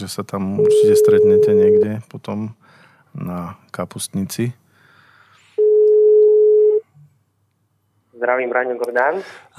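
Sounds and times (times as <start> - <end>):
speech: 0.0 - 4.6, 8.2 - 9.5
ringback tone on a phone line while a call is being placed: 0.6 - 1.9, 5.6 - 6.8.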